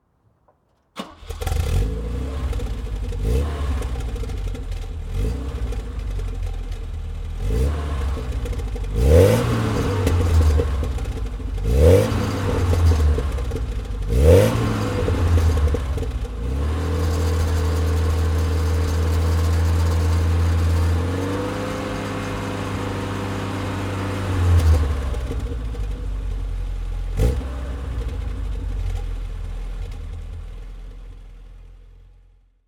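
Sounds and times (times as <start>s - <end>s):
Opel GT 1900 car engine: 1.0s - 32.4s.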